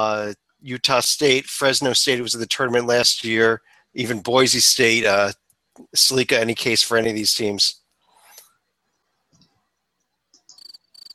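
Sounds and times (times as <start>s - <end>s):
speech: 0.0s - 7.8s
crickets chirping: 10.4s - 11.1s.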